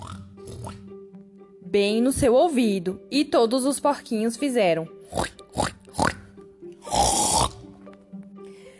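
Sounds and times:
speech: 0:01.7 - 0:05.3
person imitating dog snoring: 0:05.1 - 0:07.6.

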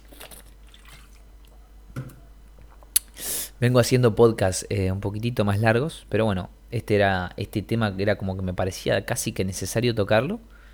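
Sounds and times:
person sipping water: 0:00.0 - 0:03.6
small gulp: 0:00.0 - 0:03.6
soft wet mouth clicks: 0:00.0 - 0:03.6
low room hum: 0:00.0 - 0:10.7
speech: 0:03.6 - 0:10.5.

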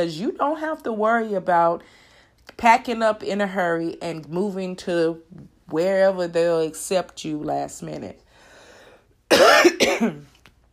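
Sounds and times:
speech: 0:00.0 - 0:08.2, 0:09.3 - 0:10.3
harsh raspy cough: 0:09.3 - 0:10.2.

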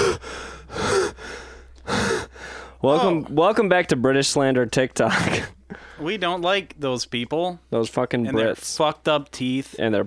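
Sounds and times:
heavy labored breathing of someone out of breath after smoking: 0:00.0 - 0:03.2, 0:05.7 - 0:06.2
speech: 0:02.8 - 0:10.0.

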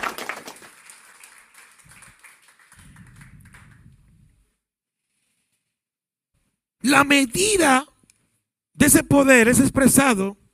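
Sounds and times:
crowd of worshippers applauding: 0:00.0 - 0:04.1
speech: 0:06.8 - 0:07.9, 0:08.8 - 0:10.4.

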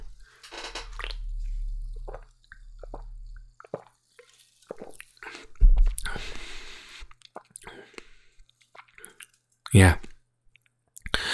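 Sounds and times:
quiet swallowing noises: 0:00.8 - 0:04.0, 0:04.7 - 0:07.8
small liquid squishes and drips: 0:00.8 - 0:06.3, 0:07.0 - 0:09.7
wet sipping and slurping of an energy drink from a can: 0:00.9 - 0:09.4
gulp: 0:01.0 - 0:03.9, 0:04.7 - 0:08.1, 0:08.8 - 0:10.1
speech: 0:09.7 - 0:10.1.

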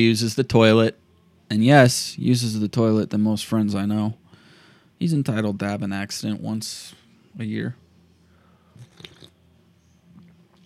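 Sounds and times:
speech: 0:00.0 - 0:04.2, 0:05.0 - 0:07.8
person slurping hot coffee: 0:08.8 - 0:09.4.

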